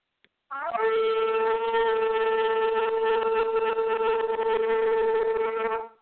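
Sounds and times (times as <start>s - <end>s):
shofar blown during a church service: 0.5s - 6.0s.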